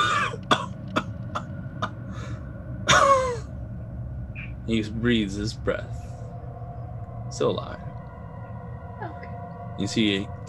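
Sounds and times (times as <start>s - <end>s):
short dry coughs: 0.0s - 0.7s, 2.9s - 3.4s
speech: 4.7s - 6.0s, 7.4s - 7.8s, 9.8s - 10.4s.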